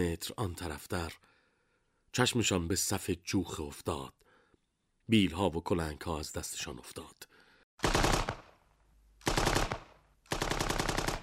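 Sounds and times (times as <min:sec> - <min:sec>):
speech: 0:00.0 - 0:01.3, 0:02.1 - 0:04.2, 0:05.1 - 0:08.0
machine-gun fire bursts: 0:07.8 - 0:08.4, 0:09.2 - 0:11.2.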